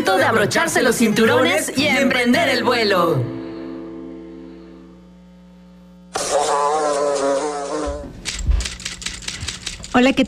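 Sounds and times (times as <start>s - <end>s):
speech: 0.1s - 3.4s, 10.0s - 10.2s
fly buzzing: 6.1s - 8.2s.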